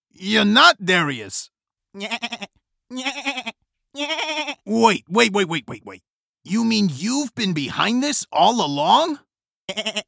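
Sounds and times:
speech: 0:00.2 - 0:10.0
goat bleating: 0:01.9 - 0:04.7, 0:09.7 - 0:10.0.

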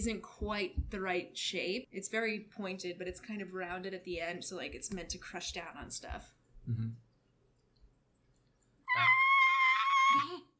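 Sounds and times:
speech: 0:00.0 - 0:07.0
person imitating the cry of a Quetzalcoatlus-like creature: 0:08.9 - 0:10.5.

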